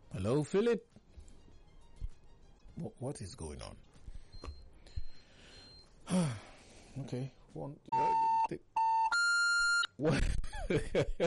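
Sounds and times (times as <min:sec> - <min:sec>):
speech: 0:00.2 - 0:01.0, 0:02.8 - 0:04.0, 0:06.1 - 0:08.7, 0:10.0 - 0:11.2
phone beeping with incoming calls to a radio call-in line: 0:04.2 - 0:06.0, 0:07.9 - 0:09.9
laughter: 0:10.0 - 0:11.2.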